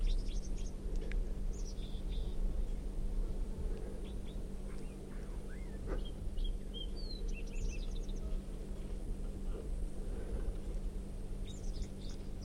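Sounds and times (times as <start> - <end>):
red crossbill singing in high chirping notes and trills: 0.0 - 0.8, 1.5 - 2.4, 4.0 - 8.4
steady low outdoor hum: 0.0 - 12.4.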